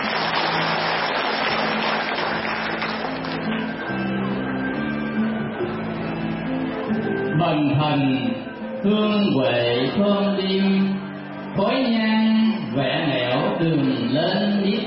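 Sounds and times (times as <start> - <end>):
crowd clapping: 0.0 - 4.2
faint low musical drone: 0.0 - 14.8
speech: 7.4 - 11.0, 11.6 - 14.8.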